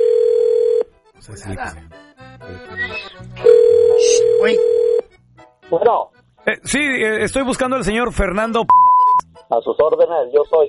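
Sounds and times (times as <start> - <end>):
telephone ringback tone of an outgoing call: 0.0 - 0.9, 3.4 - 5.0
speech: 1.3 - 5.0, 5.7 - 8.8, 9.5 - 10.6.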